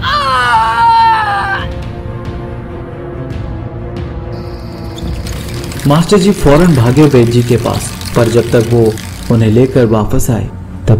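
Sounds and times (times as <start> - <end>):
girl clutching her stomach screaming in pain: 0.0 - 1.7
speech: 5.8 - 10.9.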